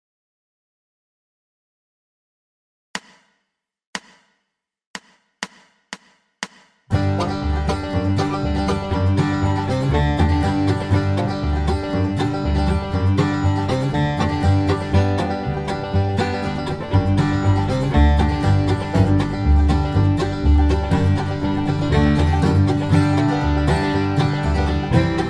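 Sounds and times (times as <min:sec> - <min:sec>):
banjo playing at 120 bpm: 0:06.9 - 0:25.2.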